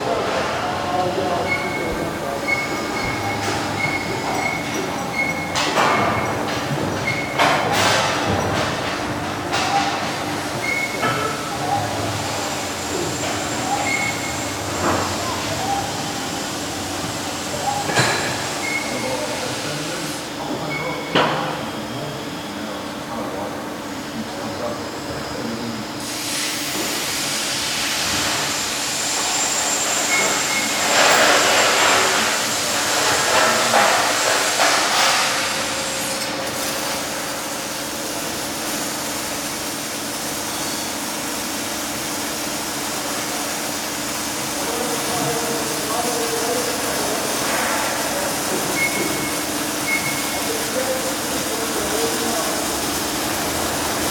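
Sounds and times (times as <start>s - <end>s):
industrial warehouse construction ambience: 0.0s - 54.0s.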